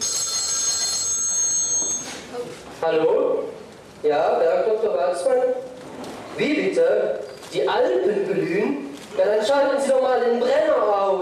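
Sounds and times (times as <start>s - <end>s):
telephone ringing in a busy doctor's practice: 0.0s - 2.3s
speech: 2.8s - 5.7s, 6.4s - 11.2s.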